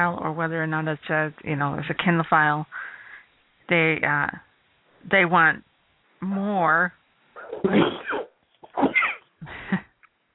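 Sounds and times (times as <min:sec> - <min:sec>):
speech: 0:00.0 - 0:02.9, 0:03.7 - 0:08.2
person sneezing: 0:07.4 - 0:09.3.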